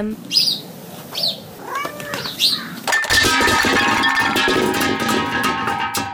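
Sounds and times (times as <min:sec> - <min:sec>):
cat meowing: 0:01.6 - 0:02.8
lingering metallic ringing from the fallen curtain rod: 0:02.9 - 0:06.1.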